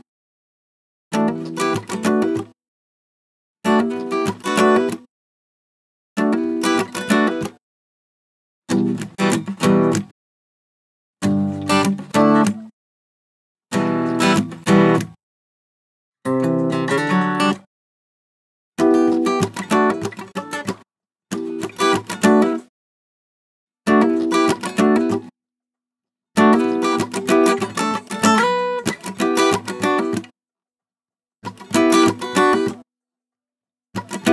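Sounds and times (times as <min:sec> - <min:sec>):
majestic guitar loop in E minor: 0:01.2 - 0:02.4, 0:03.8 - 0:05.0, 0:06.4 - 0:07.5, 0:08.7 - 0:10.0, 0:11.2 - 0:12.7, 0:13.7 - 0:15.1, 0:16.3 - 0:17.6, 0:18.8 - 0:20.7, 0:21.4 - 0:22.6, 0:23.9 - 0:25.3, 0:26.4 - 0:30.2, 0:31.6 - 0:32.8, 0:34.0 - 0:34.3.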